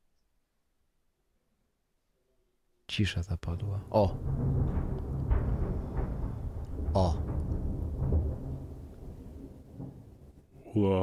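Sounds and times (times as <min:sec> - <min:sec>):
speech: 0:03.0 - 0:05.1, 0:07.0 - 0:07.3, 0:10.8 - 0:11.0
distant thunder rumbling from a storm: 0:03.8 - 0:10.8.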